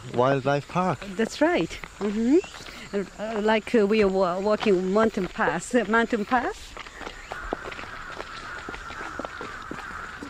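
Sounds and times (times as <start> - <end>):
speech: 0.0 - 6.8
flock of crows cawing at dusk at a temple in Kyoto Japan: 1.0 - 1.9, 5.2 - 10.2.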